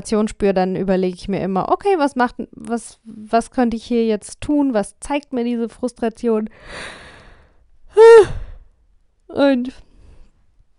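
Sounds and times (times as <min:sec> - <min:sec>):
speech: 0:00.0 - 0:07.0, 0:07.9 - 0:08.4, 0:09.3 - 0:09.9
person yawning: 0:08.0 - 0:08.6.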